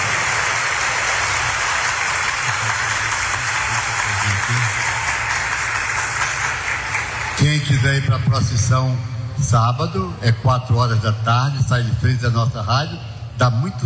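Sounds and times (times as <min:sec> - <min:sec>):
sustained audience applause in honour of the Pope: 0:00.0 - 0:07.6
speech: 0:07.5 - 0:13.8.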